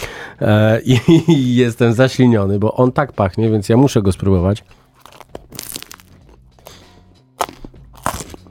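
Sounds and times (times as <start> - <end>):
speech: 0.4 - 5.3
laughter: 0.9 - 1.5
crisp crunching bites into a flaky croissant: 4.9 - 8.4.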